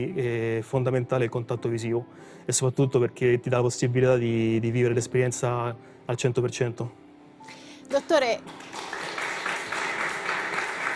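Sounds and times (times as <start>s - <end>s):
speech: 0.0s - 9.0s
audience applause: 8.4s - 10.9s.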